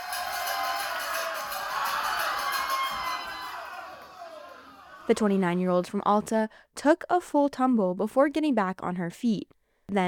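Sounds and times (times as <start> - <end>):
people whooping: 0.0 - 5.4
crowd of about 40 people cheering and shouting at a bar watch party: 0.0 - 5.5
speech: 5.1 - 10.0.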